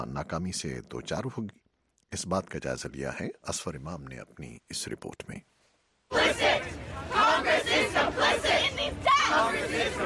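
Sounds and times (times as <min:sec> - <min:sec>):
speech: 0:00.0 - 0:05.5, 0:06.1 - 0:10.0
crowd of protesting students chanting slogans: 0:06.1 - 0:10.0.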